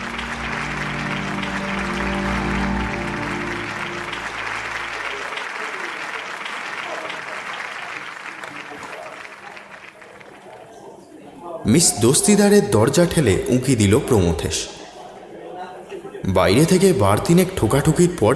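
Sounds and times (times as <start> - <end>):
theatre audience applauding as the stage curtain falls: 0.0 - 10.9
speech: 11.7 - 14.8, 16.4 - 18.3.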